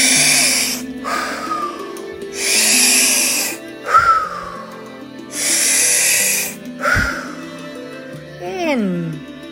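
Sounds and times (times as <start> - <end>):
slow breathing in through the nose and out: 0.0 - 7.9
soft sustained tones: 0.0 - 9.4.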